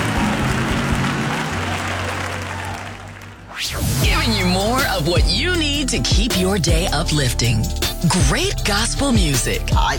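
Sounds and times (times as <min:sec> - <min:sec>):
large group clapping: 0:00.0 - 0:03.6
speech: 0:03.6 - 0:09.9.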